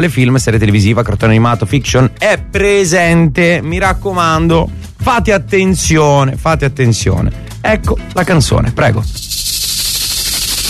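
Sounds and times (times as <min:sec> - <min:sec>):
speech: 0:00.0 - 0:09.9
person imitating a rattlesnake's rattle with their voice: 0:09.0 - 0:10.6.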